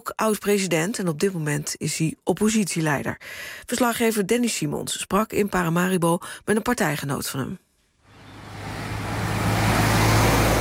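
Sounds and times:
speech: 0.1 - 7.6
cars speeding past on busy Independence Square in Paramaribo: 8.1 - 10.6.

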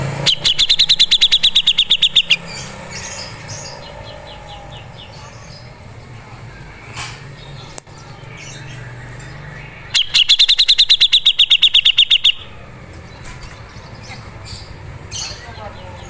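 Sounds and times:
grey-cheeked bulbul chip notes: 0.2 - 5.7, 8.2 - 12.7
faint chirps: 0.3 - 5.8, 8.1 - 12.7.

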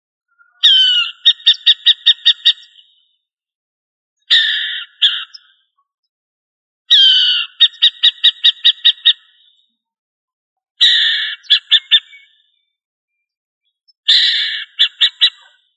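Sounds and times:
bird rasping and buzzing calls: 0.6 - 3.1, 4.2 - 5.6, 6.9 - 9.6, 10.8 - 12.6, 14.1 - 15.7.

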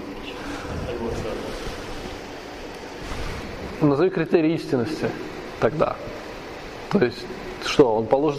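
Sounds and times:
wind-like rush: 0.4 - 2.3
stormy sea waves churning: 0.4 - 3.9
speech: 3.8 - 6.2, 6.9 - 8.3.

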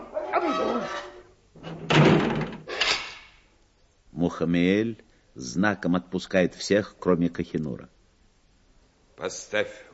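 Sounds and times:
speech: 0.4 - 1.1, 4.3 - 8.0, 9.2 - 9.9
heavy door slamming shut as prisoners are locked in: 1.7 - 2.6.

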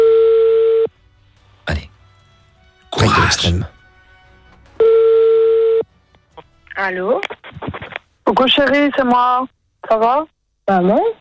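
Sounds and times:
telephone ring tone of an outgoing call: 0.0 - 0.9, 4.8 - 5.9
low noise: 0.0 - 11.2
speech: 3.3 - 3.8, 6.8 - 7.4, 8.3 - 11.2.

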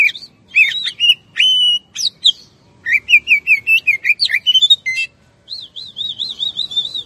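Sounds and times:
Oriental magpie-robin singing: 0.0 - 7.0.

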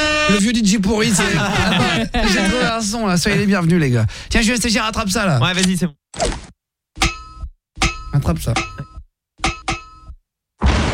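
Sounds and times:
speech: 0.3 - 6.4, 8.2 - 8.9
laughter: 0.9 - 3.6
grenade bouncing with metallic clangs: 7.0 - 10.1.

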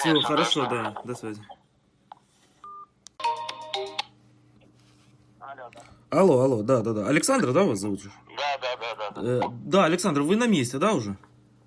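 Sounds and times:
speech: 0.0 - 1.6, 5.7 - 11.3
telephone dialing a call: 2.6 - 4.0.

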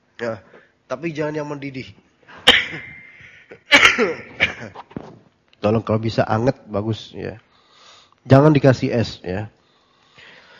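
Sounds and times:
speech: 0.2 - 2.0, 2.7 - 3.0, 3.7 - 4.9, 5.6 - 7.5, 8.2 - 9.6
short dry coughs from someone with an allergy: 2.3 - 4.9.

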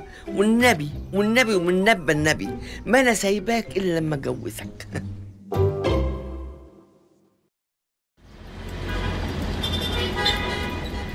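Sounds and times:
speech: 0.2 - 5.6
congested road traffic roar of passing vehicles: 8.2 - 11.1.

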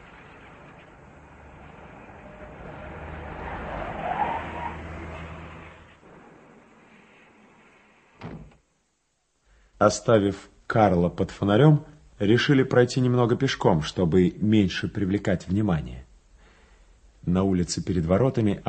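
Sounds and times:
car speeding through city streets toward a canal embankment: 0.0 - 6.8
speech: 9.8 - 16.0, 17.2 - 18.6.

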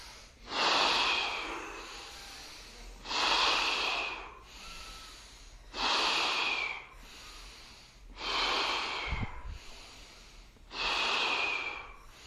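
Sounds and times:
forceful breathing from a breathing exercise: 0.0 - 12.2.

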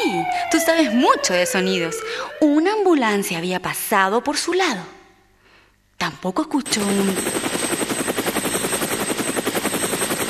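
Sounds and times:
speech: 0.1 - 5.0, 6.0 - 7.5
helicopter flying with rotor-blade chop, broadband whir and faint high whine: 6.6 - 10.2.

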